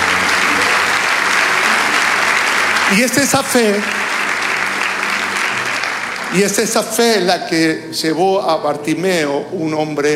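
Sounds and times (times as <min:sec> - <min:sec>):
congregation applauding during a church sermon: 0:00.0 - 0:07.3
speech: 0:02.9 - 0:04.0, 0:06.3 - 0:10.1.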